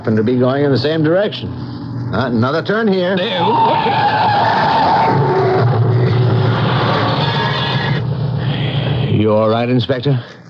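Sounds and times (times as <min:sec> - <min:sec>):
speech: 0:00.0 - 0:05.2, 0:09.2 - 0:10.4
car engine roaring: 0:00.0 - 0:10.0
car tires skidding and squealing: 0:03.2 - 0:09.0.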